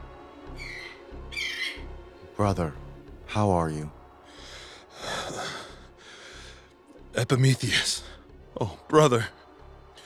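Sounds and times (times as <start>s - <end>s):
shrill raspy eagle screeches: 0.6s - 1.8s
speech: 2.4s - 4.0s, 7.2s - 9.4s.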